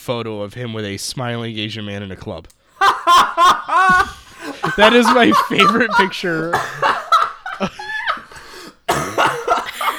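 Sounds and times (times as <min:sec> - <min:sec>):
speech: 0:00.0 - 0:06.9
breathy laughter: 0:02.8 - 0:09.9
person coughing harshly: 0:06.4 - 0:07.0, 0:08.6 - 0:09.9.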